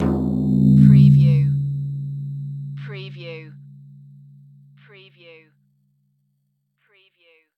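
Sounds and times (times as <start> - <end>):
weird cartoon timpani drum: 0.0 - 3.6.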